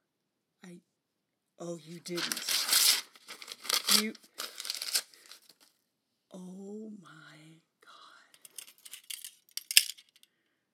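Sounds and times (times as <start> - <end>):
speech: 1.6 - 2.6, 3.9 - 4.3, 6.3 - 7.2
small metal handcuff keys jangling: 8.4 - 10.3.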